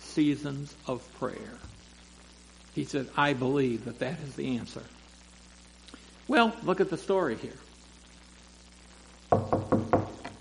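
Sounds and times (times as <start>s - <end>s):
speech: 0.2s - 1.8s, 2.8s - 5.0s, 6.3s - 7.7s
knocks on a wooden door: 9.3s - 10.3s.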